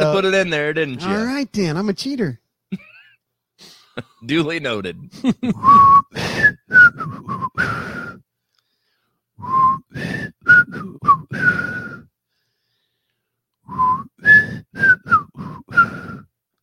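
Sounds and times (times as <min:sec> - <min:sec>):
speech: 0:00.0 - 0:02.9, 0:03.6 - 0:07.9
person whistling a breathy melodic phrase: 0:05.6 - 0:08.2, 0:09.4 - 0:12.1, 0:13.7 - 0:16.3.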